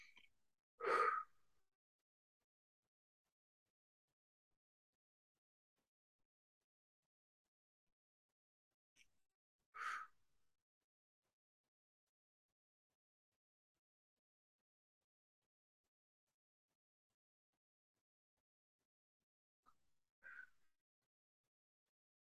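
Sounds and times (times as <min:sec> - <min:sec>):
person breathing deeply: 0:00.8 - 0:01.3, 0:09.8 - 0:10.1.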